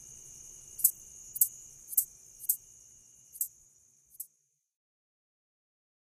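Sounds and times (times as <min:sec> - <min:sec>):
red-headed meadow katydid song in North America: 0:00.8 - 0:02.6, 0:03.3 - 0:03.5
sharp ticks of red-headed meadow katydid: 0:00.8 - 0:02.6, 0:04.1 - 0:04.3.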